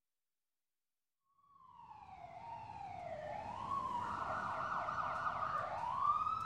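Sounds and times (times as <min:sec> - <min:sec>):
ambulance siren wailing with a rising and falling tone: 0:01.6 - 0:06.4
low rumble of traffic: 0:01.7 - 0:06.4.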